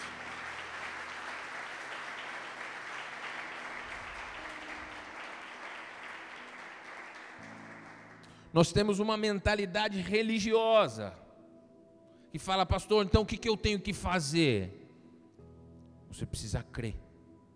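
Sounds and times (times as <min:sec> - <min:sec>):
audience applauding: 0:00.0 - 0:08.6
speech: 0:08.5 - 0:11.2, 0:12.3 - 0:14.8, 0:16.1 - 0:17.0.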